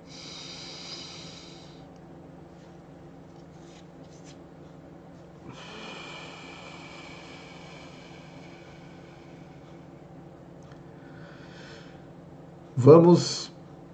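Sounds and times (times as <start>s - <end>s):
slow deep breaths in a guided deep-breathing exercise: 0.0s - 2.0s, 5.4s - 12.1s
faint constant hum: 0.0s - 13.9s
speech: 12.8s - 13.5s.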